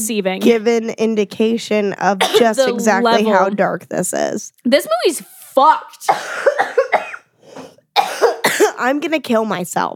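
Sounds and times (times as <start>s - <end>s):
speech: 0.0s - 7.0s, 8.8s - 9.9s
person with a persistent cough coughing harshly: 2.2s - 2.7s, 6.1s - 8.8s.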